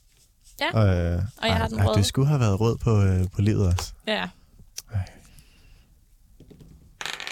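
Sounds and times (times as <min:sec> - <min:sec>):
speech: 0:00.6 - 0:05.2
dice clattering across a hard tabletop: 0:06.4 - 0:07.3.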